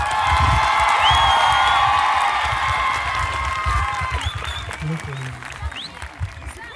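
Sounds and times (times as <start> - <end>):
cheering from a large audience: 0.0 - 6.7
thunderous applause from a large audience: 0.0 - 6.7
whistles: 1.0 - 1.8, 4.2 - 6.0.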